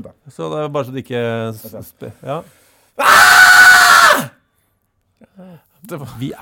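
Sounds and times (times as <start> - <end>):
speech: 0.0 - 3.3, 5.3 - 6.4
person screaming a loud primal scream: 3.0 - 4.4.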